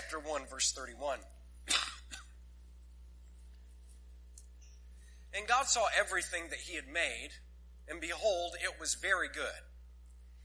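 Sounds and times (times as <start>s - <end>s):
low steady hum: 0.0s - 10.4s
speech: 0.1s - 1.8s, 5.3s - 9.7s
person coughing: 1.6s - 2.4s
throaty cough or throat clearing: 1.7s - 2.4s.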